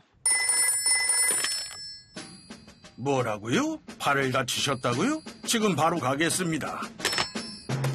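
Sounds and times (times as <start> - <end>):
telephone bell ringing: 0.3 - 2.9, 7.0 - 7.9
speech: 3.0 - 7.0.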